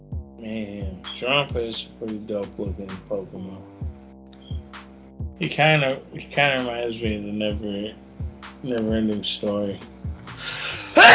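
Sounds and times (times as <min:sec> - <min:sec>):
speech: 0:00.4 - 0:03.7, 0:05.4 - 0:08.0, 0:08.6 - 0:11.1
person sneezing loudly: 0:10.4 - 0:11.1.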